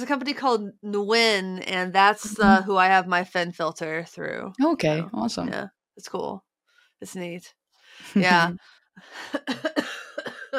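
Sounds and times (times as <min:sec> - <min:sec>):
speech: 0:00.0 - 0:10.5
rough raspy coughing: 0:09.4 - 0:10.5.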